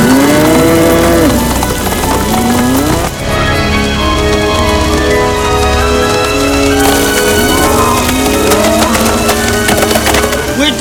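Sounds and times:
herd of cattle mooing: 0:00.0 - 0:03.3, 0:06.8 - 0:09.6
loud dense continuous din: 0:00.0 - 0:10.7.

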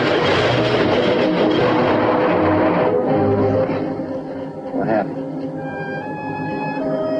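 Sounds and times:
train rolling on and gathering speed: 0:00.0 - 0:04.8
faint voices: 0:03.8 - 0:07.1.

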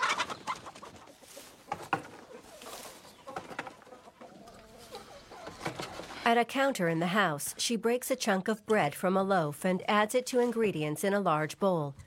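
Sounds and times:
hens clucking in a coop: 0:00.0 - 0:06.2
speech: 0:06.3 - 0:12.0.

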